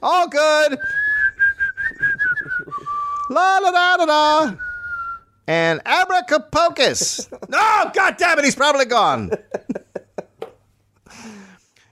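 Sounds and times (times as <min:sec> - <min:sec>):
speech: 0:00.0 - 0:01.1, 0:03.3 - 0:04.6, 0:05.5 - 0:09.7
person whistling a short tune: 0:00.8 - 0:03.3, 0:04.6 - 0:05.3
laughter: 0:02.0 - 0:03.0, 0:06.8 - 0:08.1, 0:09.1 - 0:10.4.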